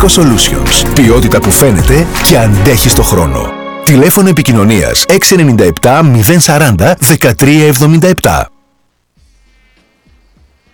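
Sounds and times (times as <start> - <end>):
speech: 0.0 - 8.5
mosquito buzzing: 9.2 - 10.7.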